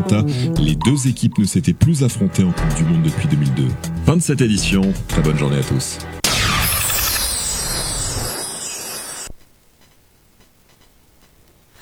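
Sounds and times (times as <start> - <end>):
speech: 0.0 - 6.2
bright whooshing burst of a radio time-signal jingle: 6.2 - 9.3.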